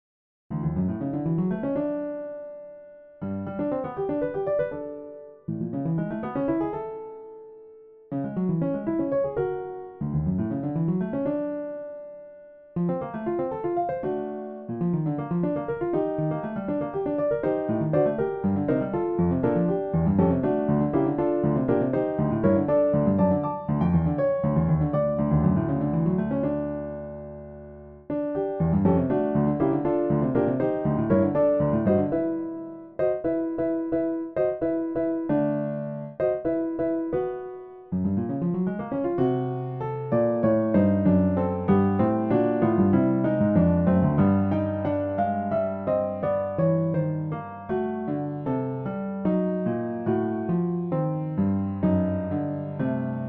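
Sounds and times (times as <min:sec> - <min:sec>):
improvised piano prelude: 0:00.5 - 0:53.2.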